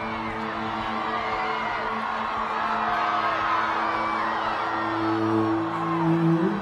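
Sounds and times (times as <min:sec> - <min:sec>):
vast crowd at a school strike for climate rally cheering and whooping: 0:00.0 - 0:06.6.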